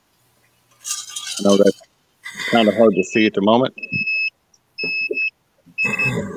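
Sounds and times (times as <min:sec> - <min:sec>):
speech: 0:01.4 - 0:01.9, 0:02.5 - 0:04.1
battery tester beeping with long shrill electronic tones: 0:02.8 - 0:06.2.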